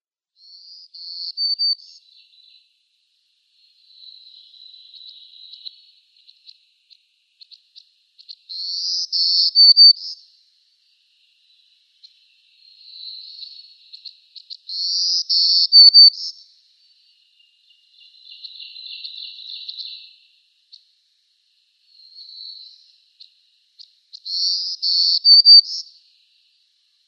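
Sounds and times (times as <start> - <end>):
Black-throated Green Warbler singing: 0.4 - 2.7, 3.6 - 6.6, 8.2 - 10.2, 10.8 - 20.4, 21.8 - 26.6.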